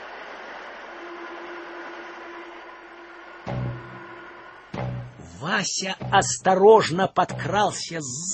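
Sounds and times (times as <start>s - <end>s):
steady rumbling drone with a low hum at a railway station: 1.3s - 6.5s
speech: 5.4s - 8.3s.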